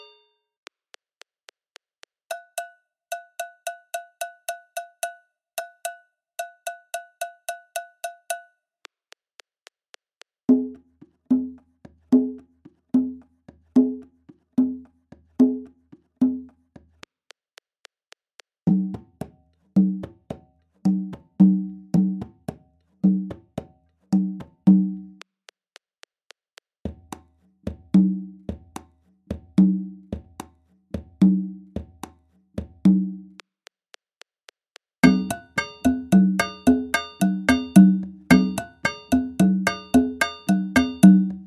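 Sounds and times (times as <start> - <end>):
Latin American Abakua rhythm: 10.5 - 17.0, 18.6 - 25.2, 26.9 - 33.4, 35.0 - 41.4.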